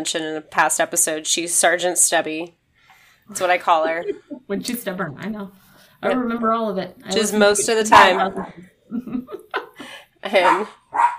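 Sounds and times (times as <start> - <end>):
speech: 0.0 - 2.6, 3.3 - 9.4, 10.2 - 11.1
laughter: 3.6 - 4.5, 7.3 - 10.0
small dog barking: 10.4 - 11.1.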